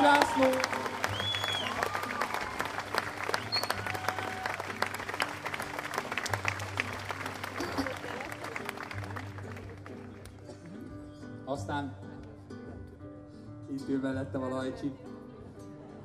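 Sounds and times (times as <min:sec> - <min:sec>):
scattered shouts and whoops from the audience: 0:00.0 - 0:04.8
audience applause: 0:00.0 - 0:10.7
speech: 0:13.9 - 0:15.0.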